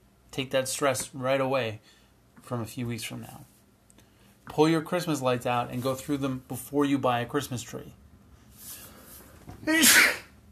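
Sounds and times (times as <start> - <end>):
speech: 0.4 - 3.5, 4.5 - 8.0, 9.6 - 10.2
person sneezing: 9.6 - 10.4.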